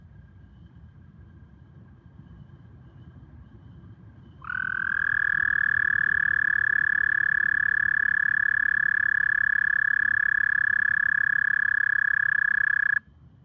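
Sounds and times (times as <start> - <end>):
faint low rumble of noise: 0.0 - 13.4
male American toad calling with a long musical trill: 4.4 - 13.0.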